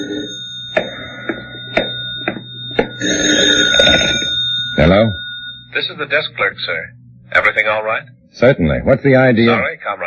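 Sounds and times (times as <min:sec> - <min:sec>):
telephone ringing in a hotel room: 0:00.0 - 0:06.5
speech: 0:03.0 - 0:03.6, 0:04.8 - 0:05.2, 0:05.8 - 0:10.0.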